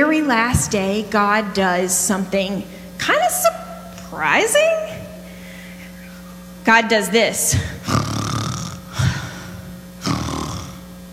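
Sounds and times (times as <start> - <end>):
speech: 0.2 - 5.0, 6.6 - 8.1
person imitating snoring with rough rattling breaths: 7.5 - 11.0.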